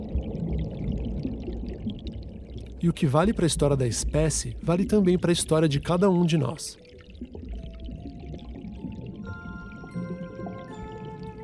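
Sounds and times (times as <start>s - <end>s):
water pouring with splashing gush: 0.0s - 11.4s
speech: 2.8s - 7.3s.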